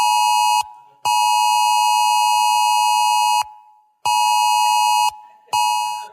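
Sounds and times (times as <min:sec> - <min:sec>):
phone emergency alert tone: 0:00.0 - 0:06.1.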